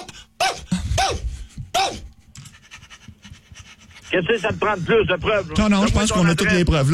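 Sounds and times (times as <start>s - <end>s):
dog barking and yelping: 0.0s - 2.1s
speech: 4.2s - 6.9s.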